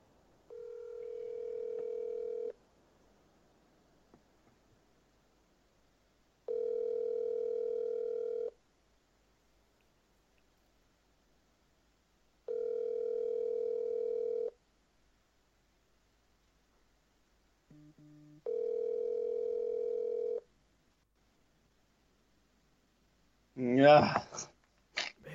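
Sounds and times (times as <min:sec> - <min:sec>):
telephone ringback tone on an outgoing call: 0:00.5 - 0:02.6, 0:06.5 - 0:08.5, 0:12.5 - 0:14.5, 0:18.4 - 0:20.4
speech: 0:23.6 - 0:24.5.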